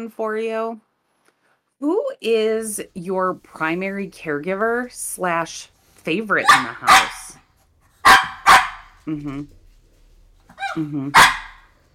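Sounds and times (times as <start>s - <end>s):
speech: 0.0s - 0.9s, 1.8s - 7.4s, 9.0s - 9.6s, 10.6s - 11.4s
dog barking: 6.4s - 7.4s, 8.0s - 9.0s, 10.6s - 11.7s
dog whining and yowling: 10.5s - 10.9s.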